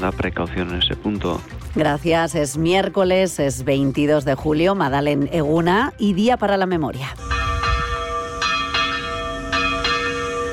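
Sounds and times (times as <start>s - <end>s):
speech: 0.0s - 7.3s
church bells ringing on an air raid anniversary: 7.2s - 10.5s.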